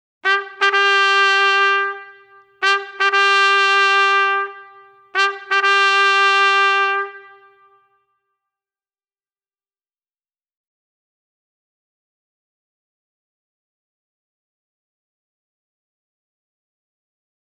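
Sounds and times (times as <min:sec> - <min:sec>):
drum corps playing a bugle call: 0:00.2 - 0:07.6.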